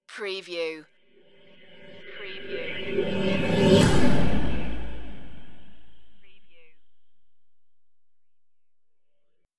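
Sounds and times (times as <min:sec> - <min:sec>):
rising pulse hit: 0:01.0 - 0:07.7.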